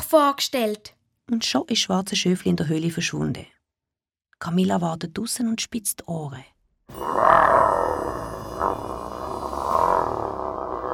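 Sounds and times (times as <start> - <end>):
speech: 0.1 - 3.5, 4.4 - 8.8
wolf roaring inside a cave: 6.9 - 10.9.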